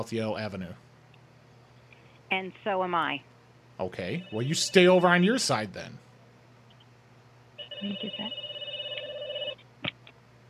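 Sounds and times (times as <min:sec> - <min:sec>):
speech: 0:00.0 - 0:00.9, 0:02.3 - 0:06.0, 0:07.8 - 0:08.5
telephone ringing: 0:04.2 - 0:05.2, 0:07.6 - 0:09.6.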